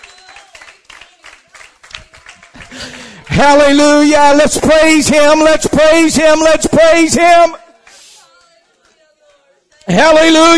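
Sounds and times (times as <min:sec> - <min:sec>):
audience at a worship service clapping in praise: 0:00.0 - 0:05.4, 0:07.4 - 0:10.4
speech: 0:03.4 - 0:07.6, 0:09.9 - 0:10.5.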